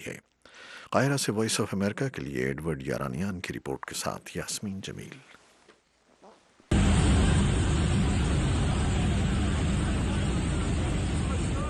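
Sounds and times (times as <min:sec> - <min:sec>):
speech: 0:00.0 - 0:00.3, 0:00.9 - 0:05.4
helicopters hovering over a city: 0:06.7 - 0:11.6.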